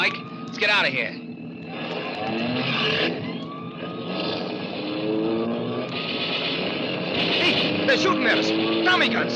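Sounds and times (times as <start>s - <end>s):
speech: 0.0s - 3.3s, 7.9s - 9.3s
police prowl car engine roaring: 0.0s - 9.3s
wailing siren-like tone sweeping up and down: 0.0s - 9.3s.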